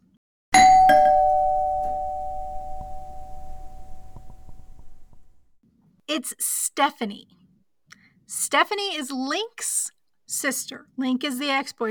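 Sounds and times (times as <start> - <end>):
doorbell chiming: 0.6 - 5.1
speech: 6.2 - 7.4, 8.3 - 11.8.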